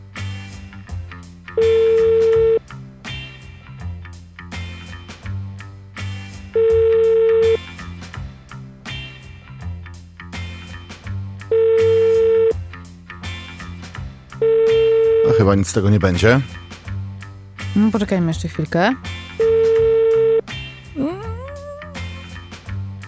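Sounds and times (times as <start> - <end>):
telephone call ringing out unanswered: 1.6 - 2.6, 6.6 - 7.6, 11.5 - 12.6, 14.4 - 15.4, 19.4 - 20.4
speech: 15.5 - 16.6, 17.9 - 19.2.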